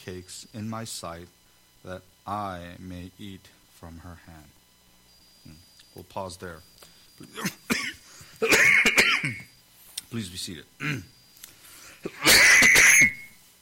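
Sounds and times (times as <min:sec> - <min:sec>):
speech: 0:00.0 - 0:04.6, 0:05.4 - 0:07.6, 0:10.1 - 0:11.2, 0:12.0 - 0:13.1
person coughing: 0:07.2 - 0:09.5, 0:10.8 - 0:11.1, 0:12.0 - 0:13.3.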